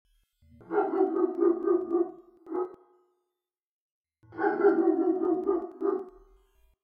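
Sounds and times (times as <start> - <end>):
big dog barking: 0.6 - 2.8, 4.3 - 6.1.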